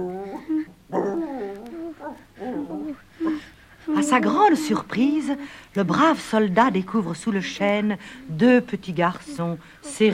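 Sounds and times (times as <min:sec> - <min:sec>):
dog whining yelps: 0:00.0 - 0:03.0
speech: 0:04.0 - 0:10.1.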